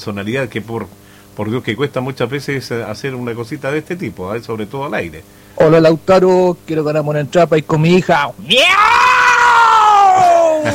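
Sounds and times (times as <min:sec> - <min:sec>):
speech: 0:00.0 - 0:09.0
person imitating a cat meow: 0:08.4 - 0:10.7.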